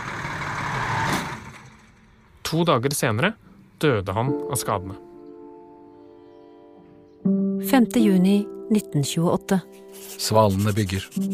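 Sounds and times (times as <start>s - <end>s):
heavy bus engine rumbling on a street in Gothenburg: 0.0s - 3.8s
speech: 2.5s - 5.1s, 7.2s - 11.3s.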